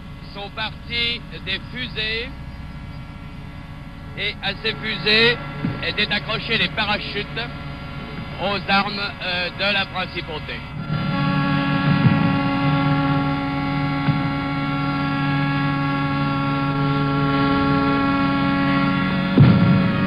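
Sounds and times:
ship sirens blaring: 0:00.0 - 0:20.0
speech: 0:00.4 - 0:02.4, 0:04.2 - 0:07.6, 0:08.4 - 0:10.7
dull thump: 0:05.5 - 0:06.1, 0:11.8 - 0:14.8.

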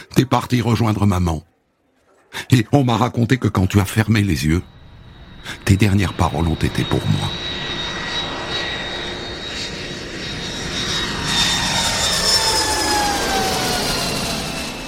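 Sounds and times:
speech: 0:00.2 - 0:01.5, 0:02.3 - 0:04.8, 0:05.4 - 0:07.4
jet airplane engine roaring at an airport: 0:03.9 - 0:14.8.

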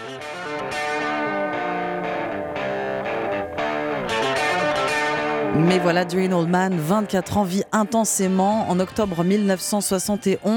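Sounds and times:
full rock band playing: 0:00.0 - 0:07.0
loud distorted electric guitar riff opening a rock song: 0:00.0 - 0:10.5
speech: 0:05.6 - 0:10.5.

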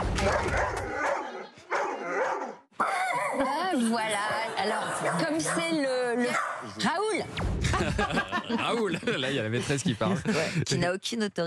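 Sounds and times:
dog barking and yipping excitedly: 0:00.2 - 0:03.6, 0:05.0 - 0:06.7
laughter: 0:03.2 - 0:05.6, 0:07.6 - 0:10.8
speech: 0:08.6 - 0:11.4.

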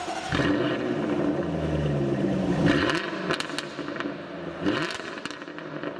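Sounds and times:
Jaguar V8 car engine purring and revving: 0:00.0 - 0:05.9
crackling pops from the car exhaust: 0:00.0 - 0:05.9.

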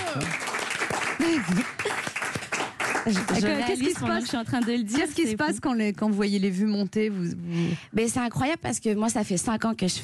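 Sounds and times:
studio audience applause: 0:00.0 - 0:04.8
speech: 0:00.2 - 0:00.4, 0:01.2 - 0:01.9, 0:03.0 - 0:10.0.

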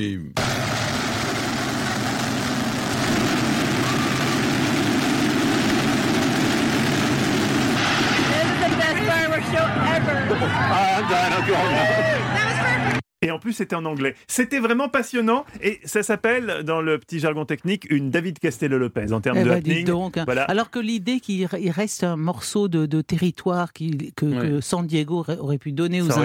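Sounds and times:
speech: 0:00.0 - 0:00.7, 0:09.5 - 0:12.4, 0:13.2 - 0:26.2
massive fireworks barrage all exploding at once: 0:00.4 - 0:10.2
crowd noise: 0:01.5 - 0:06.2, 0:07.8 - 0:13.0
rising firework whistles: 0:03.6 - 0:04.8.

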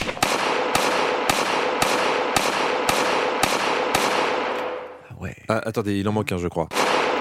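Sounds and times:
gunshots fired from a car on a street in Queens New York: 0:00.0 - 0:05.0, 0:06.7 - 0:07.1
speech: 0:05.5 - 0:06.8.

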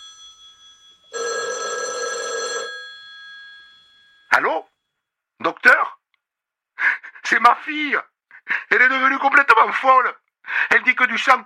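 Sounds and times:
home telephone bell ringing: 0:00.0 - 0:05.0
speech: 0:07.3 - 0:08.1, 0:08.7 - 0:11.4.

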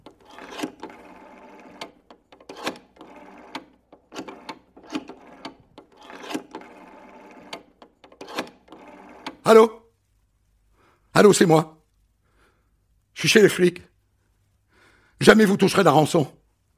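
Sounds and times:
office telephone rotary dial whirring and clicking: 0:00.0 - 0:09.7
speech: 0:09.5 - 0:09.8, 0:11.2 - 0:11.8, 0:13.2 - 0:13.9, 0:15.2 - 0:16.7.

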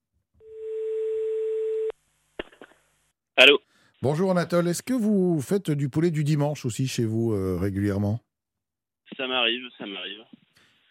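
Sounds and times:
telephone call tone on an outgoing call: 0:00.4 - 0:02.0
speech: 0:03.4 - 0:08.3, 0:09.2 - 0:10.4.

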